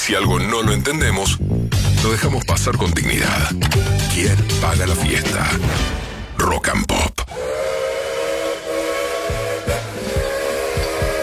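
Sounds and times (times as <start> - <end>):
speech: 0.0 - 7.1
steam train whistle with a hissing edge: 7.3 - 11.2.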